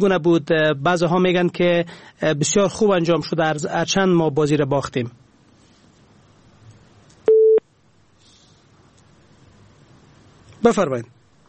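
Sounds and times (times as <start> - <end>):
speech: 0.0 - 5.2, 10.6 - 11.2
hiss: 0.0 - 11.4
telephone busy tone after call disconnects: 7.3 - 7.6.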